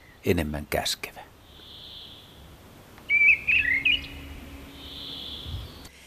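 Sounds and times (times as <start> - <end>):
faint outdoor hiss: 0.0 - 6.0
speech: 0.2 - 1.3
mistle thrush singing fluting whistled phrases: 1.3 - 6.0.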